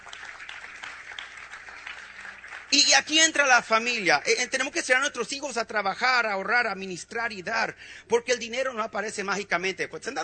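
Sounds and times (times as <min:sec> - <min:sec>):
faint applause from a church congregation during a sermon: 0:00.0 - 0:03.1
speech: 0:02.7 - 0:10.2.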